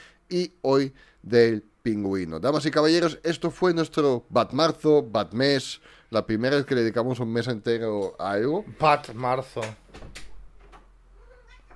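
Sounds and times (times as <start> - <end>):
speech: 0.3 - 10.2
female cat meowing softly: 11.2 - 11.7.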